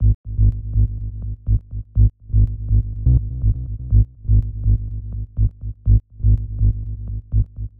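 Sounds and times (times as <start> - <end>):
tech house bass loop in G sharp minor: 0.0 - 7.7.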